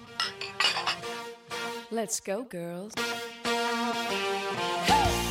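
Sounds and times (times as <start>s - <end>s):
glasses clinking in a toast: 0.0s - 1.2s
speech: 1.9s - 3.2s, 4.1s - 5.2s.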